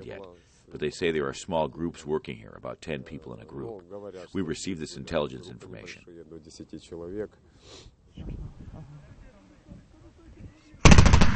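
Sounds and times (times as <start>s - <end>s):
speech: 0.0s - 9.0s
voices talking quietly: 0.0s - 10.9s
machine gun firing warning shots toward rebel positions: 10.8s - 11.3s.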